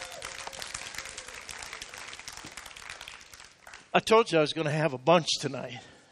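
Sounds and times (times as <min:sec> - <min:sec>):
audience hand clapping: 0:00.0 - 0:04.1
speech: 0:03.9 - 0:05.9.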